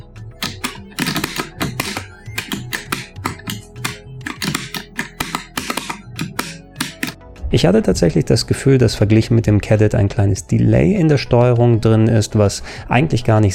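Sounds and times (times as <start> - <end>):
arcade stick buttons and lever clicking without microswitches: 0.4 - 7.2
speech: 7.5 - 13.5.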